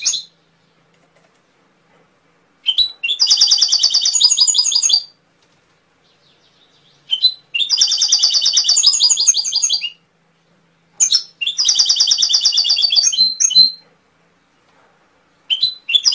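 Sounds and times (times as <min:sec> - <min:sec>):
canary song training recording trilling: 0:00.0 - 0:00.4, 0:02.6 - 0:05.2, 0:06.0 - 0:10.0, 0:11.0 - 0:13.8, 0:15.5 - 0:16.1
canary short chirps: 0:00.0 - 0:00.8, 0:02.6 - 0:05.2, 0:06.0 - 0:14.7, 0:15.3 - 0:16.1.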